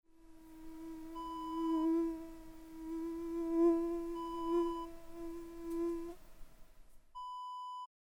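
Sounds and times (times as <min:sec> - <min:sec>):
mosquito buzzing: 0:00.1 - 0:06.2.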